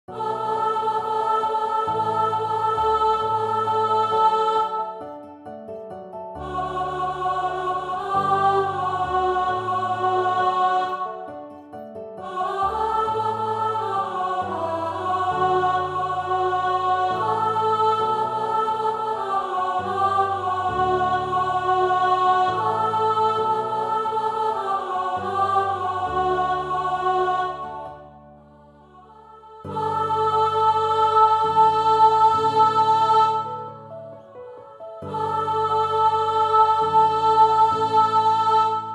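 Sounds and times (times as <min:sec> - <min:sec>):
soprano singing: 0:00.1 - 0:38.9.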